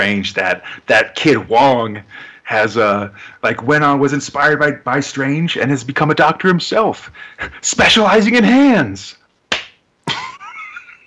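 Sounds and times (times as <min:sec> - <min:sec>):
speech: 0:00.0 - 0:09.2
person slapping own face with a hand: 0:09.5 - 0:10.4.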